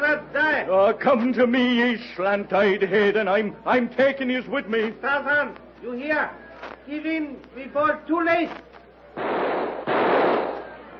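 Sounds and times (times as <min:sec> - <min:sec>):
speech: 0:00.0 - 0:09.3
rifle shots firing the last cartridges: 0:09.2 - 0:10.8.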